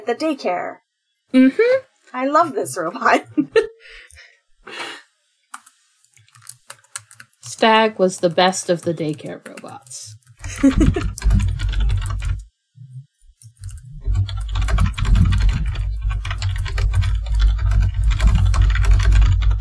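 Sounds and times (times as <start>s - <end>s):
speech: 0.0s - 3.6s, 7.5s - 11.5s
computer keyboard typing: 5.5s - 19.5s
low hum: 10.4s - 19.5s.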